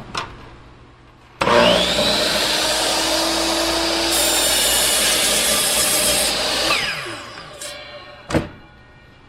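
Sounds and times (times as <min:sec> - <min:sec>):
chop saw cutting raw wood strips: 0:01.4 - 0:08.2.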